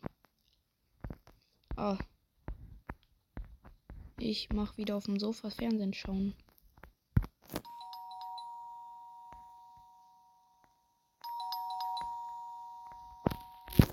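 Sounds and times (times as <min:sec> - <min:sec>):
speech: 0:01.8 - 0:02.1, 0:04.2 - 0:06.4
electronic doorbell chime: 0:07.6 - 0:13.9.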